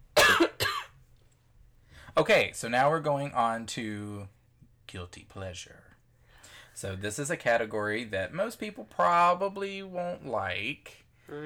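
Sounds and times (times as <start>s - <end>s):
harsh coughs: 0.2s - 1.0s
speech: 2.2s - 5.9s, 6.8s - 11.4s.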